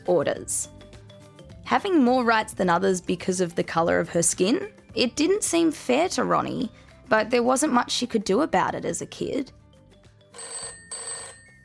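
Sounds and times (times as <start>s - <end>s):
speech: 0.1s - 0.8s, 1.7s - 9.6s
old-style telephone bell ringing: 10.2s - 11.6s.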